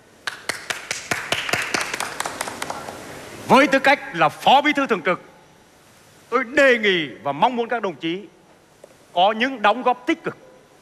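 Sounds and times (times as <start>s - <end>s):
audience applauding at an official meeting: 0.2s - 3.0s
speech: 3.5s - 5.3s, 6.3s - 8.4s, 9.2s - 10.4s.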